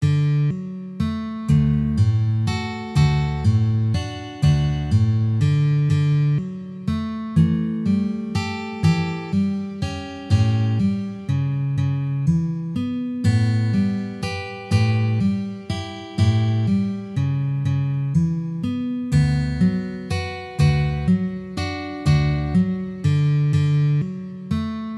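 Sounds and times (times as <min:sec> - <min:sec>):
guitar playing: 0:00.0 - 0:24.9.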